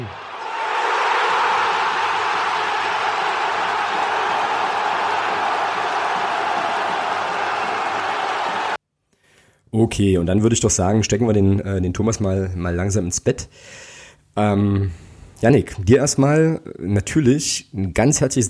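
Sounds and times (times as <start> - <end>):
replayed recording of a large crowd cheering and roaring: 0.0 - 8.8
speech: 9.8 - 13.8, 14.4 - 18.4.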